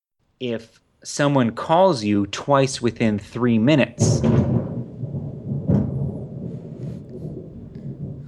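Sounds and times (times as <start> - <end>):
speech: 0.4 - 4.5
low rolling thunder rumbling: 2.3 - 8.2.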